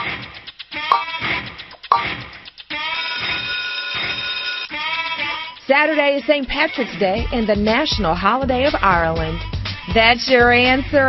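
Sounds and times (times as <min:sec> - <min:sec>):
quiz countdown clock ticking: 0:00.9 - 0:01.1, 0:01.8 - 0:02.2
steady loud buzzing alarm: 0:02.9 - 0:04.7
speech: 0:05.7 - 0:11.0.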